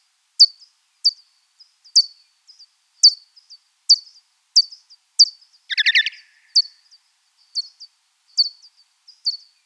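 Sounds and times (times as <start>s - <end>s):
pipistrelle bat lower rattling chirps: 3.9s - 6.7s.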